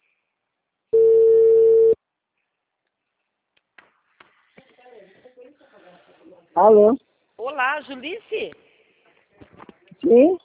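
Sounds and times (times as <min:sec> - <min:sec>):
telephone ringing tone beep while a call is being placed: 0:01.0 - 0:02.0
speech: 0:06.6 - 0:08.6, 0:10.1 - 0:10.4.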